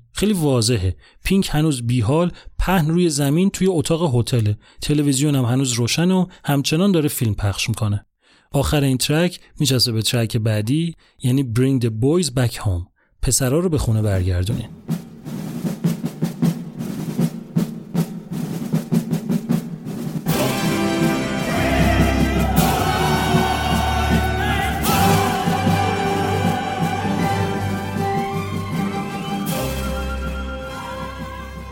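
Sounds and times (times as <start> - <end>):
speech: 0.2 - 15.0
crisp military snare drum march rhythm: 14.6 - 31.6
loud massed choir shouting in unison: 20.3 - 29.3.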